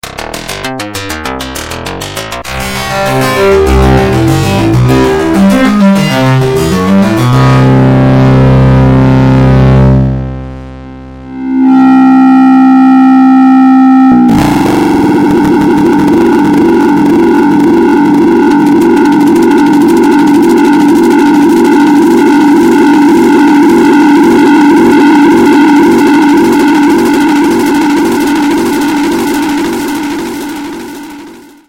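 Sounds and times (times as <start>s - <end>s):
plucked Evolver synthesizer: 0.0s - 31.6s.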